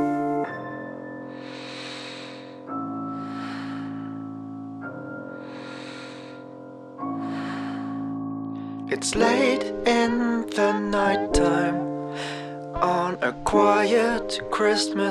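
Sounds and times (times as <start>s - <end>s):
slow gentle breathing under a duvet: 1.2s - 4.6s, 5.2s - 8.9s, 11.9s - 12.6s
speech: 8.9s - 11.9s, 12.8s - 15.0s.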